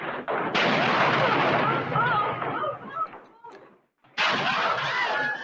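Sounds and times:
gunfire barrage in a film saloon fight scene: 0.1 - 3.2, 4.2 - 5.3.

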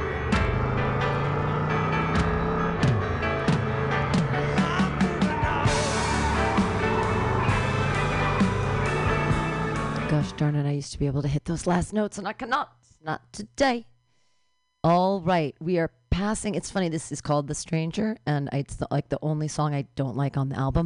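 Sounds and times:
car driving away: 0.0 - 10.4
speech: 10.4 - 13.9, 14.8 - 20.8.

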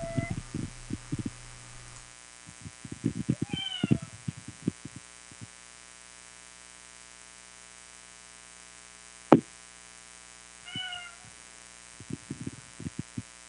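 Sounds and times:
cat meowing: 0.0 - 0.4, 3.3 - 4.2, 10.7 - 11.3
steady low electrical hum: 0.0 - 13.4.

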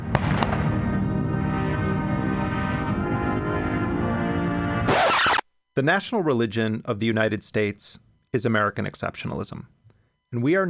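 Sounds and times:
cannon fire from a gun salute: 0.0 - 0.9
steady sustained musical tone: 0.8 - 5.4
speech: 5.8 - 10.6.

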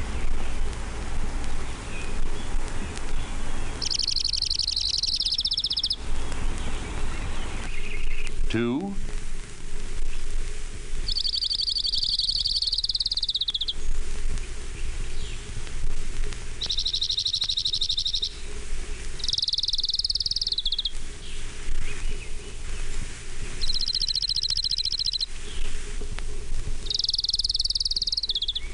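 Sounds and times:
steady low hum: 0.0 - 28.7
orange-crowned warbler singing a high buzzy trill: 1.6 - 9.0, 11.0 - 15.5, 16.6 - 25.8, 26.8 - 28.7
speech: 8.5 - 9.1.

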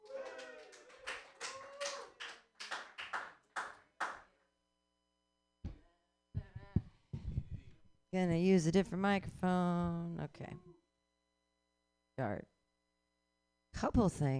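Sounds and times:
small comedy show audience clapping: 0.0 - 4.3
speech: 8.1 - 10.7, 12.2 - 12.5, 13.8 - 14.3.

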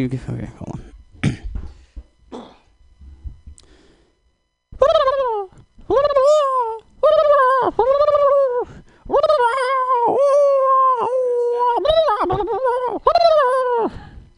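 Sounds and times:
speech: 0.0 - 0.8
person's voice imitating a wolf howling: 4.8 - 14.2.

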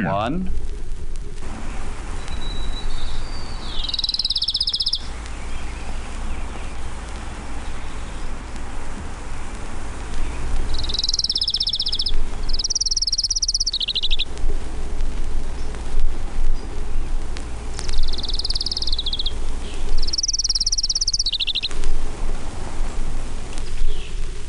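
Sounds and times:
speech: 0.0 - 0.7
steady hiss of noise: 0.0 - 24.4
Orange-crowned warbler singing short high trilling songs: 2.2 - 8.4, 10.1 - 14.3, 16.5 - 21.8, 23.6 - 24.2.

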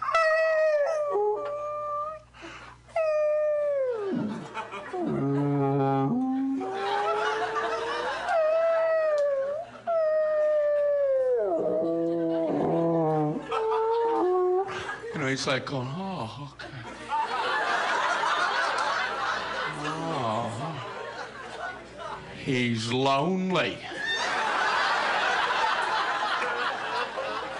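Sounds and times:
person's voice imitating whale calls: 0.0 - 2.3, 3.0 - 14.8
laughter: 4.0 - 15.2, 16.6 - 22.4, 23.9 - 27.5
speech: 15.4 - 16.0, 22.5 - 23.9.

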